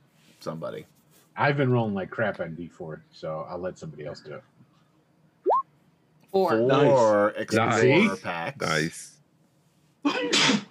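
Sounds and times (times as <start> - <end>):
speech: 0.4 - 4.5, 6.3 - 9.1
sneeze: 10.1 - 10.6.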